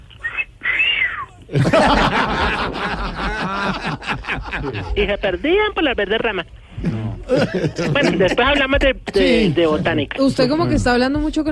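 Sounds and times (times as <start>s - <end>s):
person imitating a female bird's call with their voice: 0.2s - 1.4s
speech: 1.5s - 2.2s, 3.7s - 11.5s
laughter: 1.5s - 5.2s, 6.9s - 9.2s.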